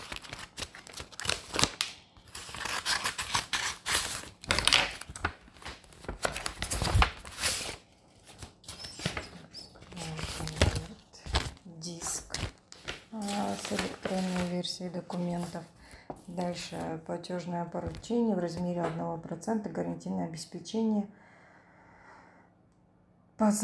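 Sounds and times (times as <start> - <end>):
envelope being opened, paper crinkling, tearing and rustling: 0.0 - 15.6
speech: 14.8 - 21.2, 23.4 - 23.6.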